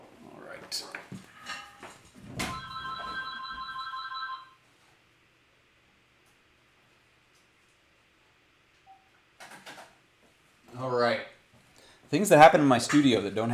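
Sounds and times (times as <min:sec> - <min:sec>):
telephone ringing with incoming call in a studio: 0:02.5 - 0:04.6
speech: 0:12.1 - 0:13.5.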